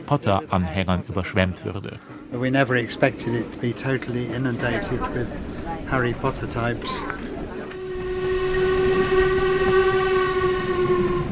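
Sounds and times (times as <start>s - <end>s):
speech: 0.1s - 7.2s
steam locomotive rumbling across a viaduct in a right-hand curve: 2.2s - 11.3s
steam locomotive whistle sounding a long tone: 7.6s - 11.3s.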